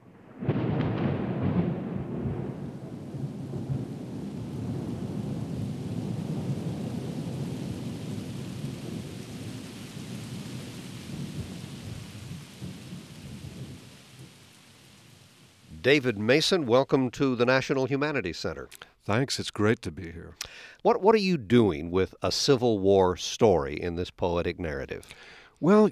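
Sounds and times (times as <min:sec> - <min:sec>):
loud rolling rumble of thunder: 0:00.0 - 0:16.8
steady heavy rain: 0:00.0 - 0:21.8, 0:25.1 - 0:25.9
speech: 0:15.8 - 0:25.9.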